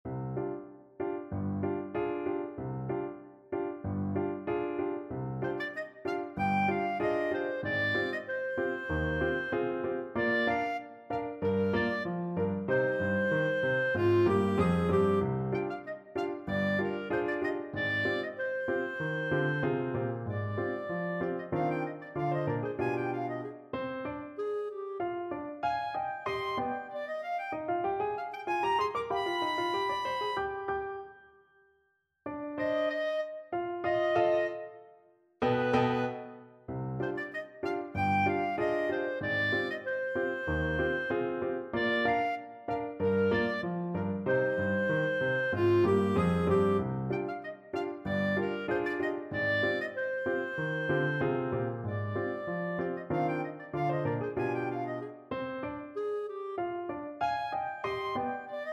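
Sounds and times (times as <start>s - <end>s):
piano: 0.0s - 58.7s
clarinet: 3.8s - 31.6s, 32.3s - 58.7s.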